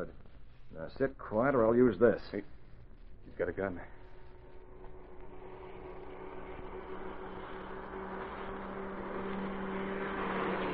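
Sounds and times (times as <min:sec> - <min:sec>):
speech: 0:00.0 - 0:02.6, 0:03.3 - 0:04.0
police car road rumble: 0:00.0 - 0:10.7
police car engine hum: 0:03.8 - 0:10.7.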